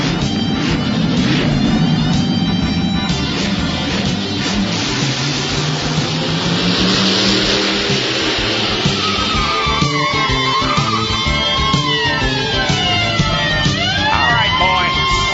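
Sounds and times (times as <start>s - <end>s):
powerful muscle car engine revving: 0.0s - 15.3s.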